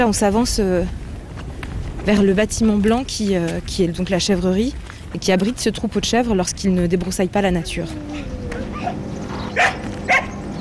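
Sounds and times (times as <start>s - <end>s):
speech: 0.0s - 1.0s, 2.0s - 8.4s
steady hum: 0.0s - 10.5s
excited sheepdog barking in greeting at a goat farm: 8.1s - 10.4s.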